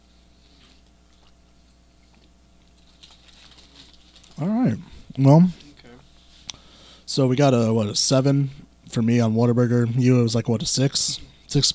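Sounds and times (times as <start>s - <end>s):
quiet chewing of french fries: 0.5s - 4.6s
speech: 4.4s - 5.6s, 7.2s - 11.7s.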